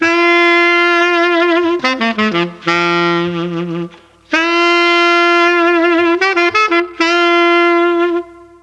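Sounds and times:
Mellotron saxophone note A3: 0:00.0 - 0:08.6.

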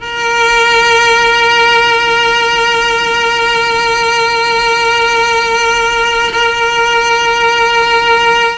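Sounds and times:
Mellotron cello note A3 sharp: 0:00.0 - 0:08.5.

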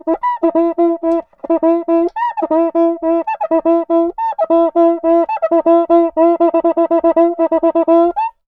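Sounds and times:
cuica samba rhythm: 0:00.0 - 0:08.4.

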